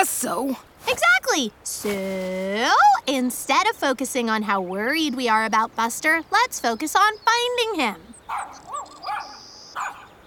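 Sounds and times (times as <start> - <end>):
speech: 0.0 - 8.6
dog barking: 8.3 - 10.2.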